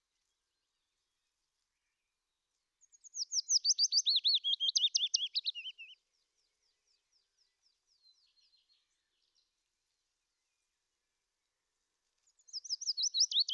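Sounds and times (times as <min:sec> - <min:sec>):
faint quiet twitter: 0:00.0 - 0:13.5
Willow warbler singing soft liquid descending phrase: 0:02.8 - 0:09.5, 0:12.3 - 0:13.5.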